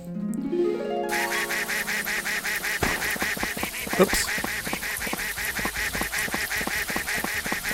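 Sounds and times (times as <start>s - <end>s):
rising musical tone: 0.0s - 2.9s
video game duck quacking: 1.1s - 7.7s
speech: 4.0s - 4.5s.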